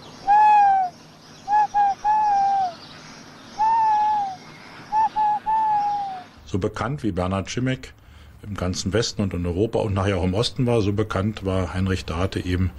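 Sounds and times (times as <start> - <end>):
tawny owl hooting: 0.0 - 6.4
speech: 6.5 - 12.7.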